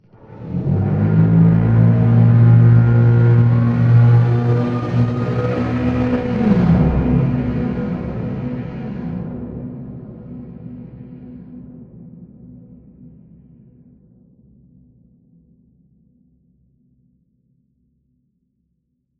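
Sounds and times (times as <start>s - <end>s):
exterior cables pulsing: 0.5s - 9.0s.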